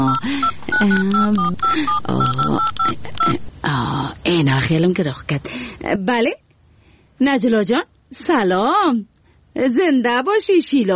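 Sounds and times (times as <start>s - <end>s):
telephone keypad dialing tones: 0.0s - 3.4s
speech: 0.1s - 6.4s, 7.2s - 10.9s.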